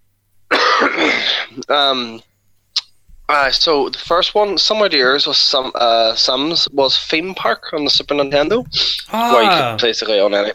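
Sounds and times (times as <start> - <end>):
speech: 1.0 - 2.3, 3.3 - 10.5
harsh raspy throat clearing: 9.0 - 9.8
person coughing: 9.0 - 9.8.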